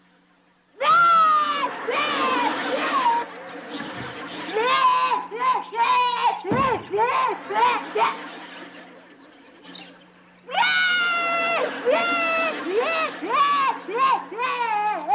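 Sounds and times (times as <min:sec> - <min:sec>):
child crying and wailing: 0:00.8 - 0:03.3, 0:04.4 - 0:08.4, 0:10.5 - 0:15.1
laughter: 0:00.8 - 0:15.1.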